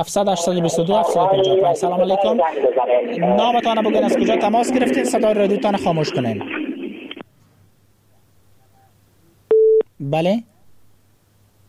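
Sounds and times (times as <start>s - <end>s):
speech: 0.0s - 6.6s, 10.1s - 10.5s
telephone busy tone after a caller's line is cut off during a radio call-in: 9.5s - 9.8s.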